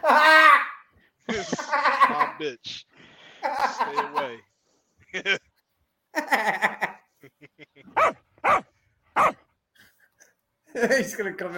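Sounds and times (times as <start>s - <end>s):
short bursts of human vocal noise like laughter: 1.3s - 2.5s, 3.4s - 4.4s, 6.2s - 8.0s
speech: 2.4s - 4.5s, 5.1s - 5.4s, 6.3s - 8.6s, 10.8s - 11.5s
dog barking: 8.0s - 9.5s.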